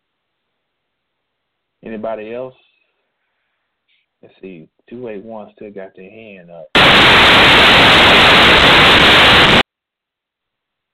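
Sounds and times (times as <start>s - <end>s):
speech: 1.8s - 2.6s, 4.2s - 9.6s
loud harsh static: 6.8s - 9.6s.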